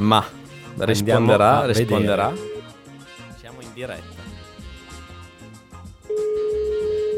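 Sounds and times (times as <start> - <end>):
speech: 0.0 - 2.5, 3.8 - 4.1
telephone line tone from a call placed to Tenerife, Spain: 2.3 - 2.7, 6.1 - 7.1.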